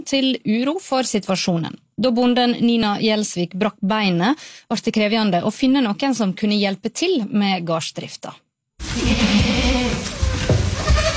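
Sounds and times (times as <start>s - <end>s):
speech: 0.0s - 8.4s, 9.0s - 10.1s
barn noise: 8.8s - 11.1s
goats and sheep bleating in a farm barn: 8.8s - 11.1s.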